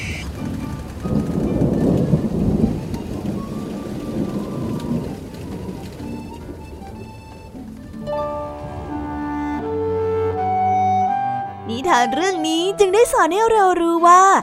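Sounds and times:
deep rumbling thunder: 0.0s - 9.8s
heavy rain in a thunderstorm: 0.0s - 11.3s
sustained musical tones: 0.0s - 14.2s
speech: 12.0s - 14.4s.

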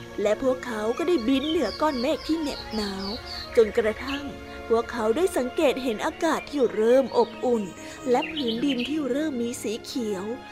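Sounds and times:
birds chirping and tweeting: 0.1s - 10.4s
person narrating: 0.2s - 10.4s
speech: 0.2s - 10.4s
bright high bird calls: 1.2s - 4.5s, 6.0s - 9.2s.

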